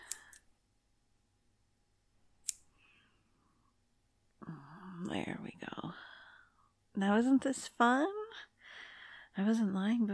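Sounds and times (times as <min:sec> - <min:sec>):
scissors cutting through bindings: 0:00.0 - 0:00.5, 0:02.4 - 0:02.7
speech: 0:05.0 - 0:06.1, 0:07.0 - 0:08.5, 0:09.4 - 0:10.1.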